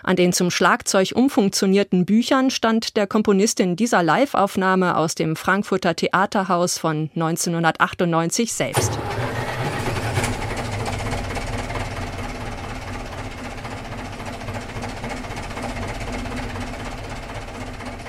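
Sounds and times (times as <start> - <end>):
speech: 0.0 - 9.4
twelve tractor engines idling and chugging in a concert piece: 8.6 - 18.0.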